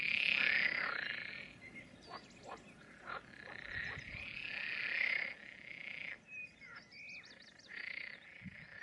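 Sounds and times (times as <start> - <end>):
chorus of frogs croaking at dusk in mating season in a ditch and fields: 0.0 - 8.8
faint bird chirps: 1.2 - 4.6, 6.0 - 8.8.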